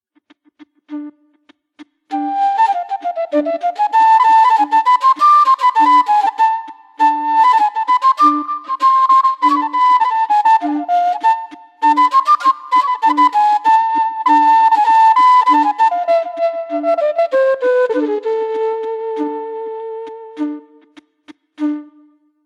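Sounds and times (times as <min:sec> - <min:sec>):
quena flute: 0:00.9 - 0:22.3.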